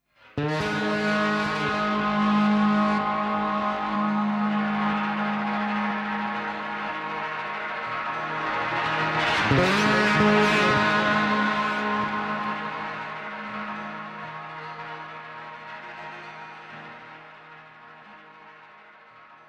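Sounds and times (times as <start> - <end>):
guitar playing at night: 0.4 - 16.8.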